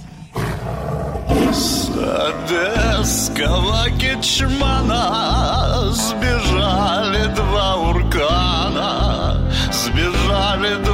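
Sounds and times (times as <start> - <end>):
tiger roaring: 0.0 - 2.5
speech: 1.5 - 10.9.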